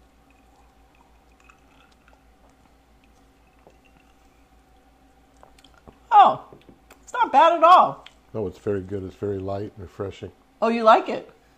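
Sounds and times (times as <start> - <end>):
faint drips: 0.0 - 7.1
steady low hum: 0.0 - 11.5
person sipping fizzy blueberry soda: 0.2 - 6.0
small squishy swallows: 0.4 - 6.1
speech: 7.3 - 11.5.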